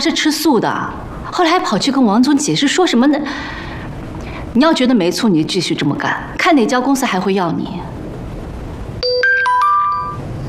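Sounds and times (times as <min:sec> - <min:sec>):
speech: 0:00.0 - 0:03.7, 0:04.5 - 0:07.9
WeChat message notification chime on a phone: 0:09.0 - 0:10.2.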